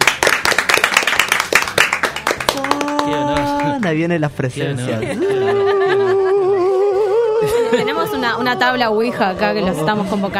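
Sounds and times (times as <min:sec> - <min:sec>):
small crowd clapping: 0:00.0 - 0:04.1
speech: 0:03.8 - 0:05.7, 0:07.4 - 0:10.3
laughter: 0:04.7 - 0:10.3.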